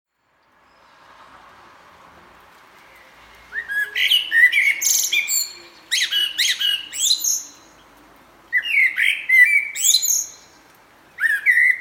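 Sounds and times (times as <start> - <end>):
common blackbird calling: 3.0 - 7.7, 8.5 - 10.6, 11.2 - 11.7.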